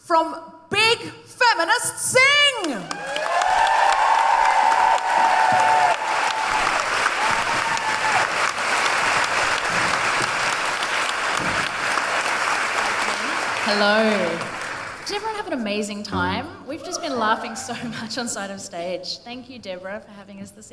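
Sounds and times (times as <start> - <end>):
speech: 0.1 - 3.2, 13.7 - 14.4, 15.1 - 20.7
audience at a live comedy and music show applauding and cheering: 2.8 - 15.1.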